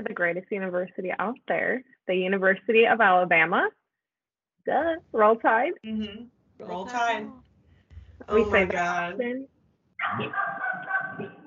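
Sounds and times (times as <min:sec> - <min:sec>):
speech: 0:00.0 - 0:03.8, 0:04.6 - 0:07.4, 0:08.2 - 0:11.3
dogs barking loudly with a howling yowling quality: 0:10.0 - 0:11.4.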